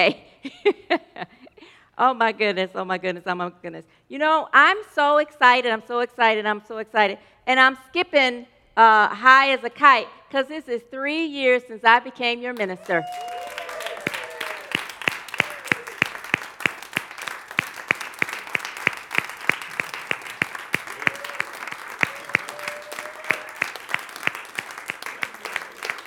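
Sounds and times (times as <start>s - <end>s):
speech: 0.0s - 1.4s, 2.0s - 13.6s
faint voice or whoop: 12.8s - 16.4s, 20.8s - 24.0s
audience applauding: 12.8s - 26.0s
single person clapping back at the audience: 13.6s - 26.0s.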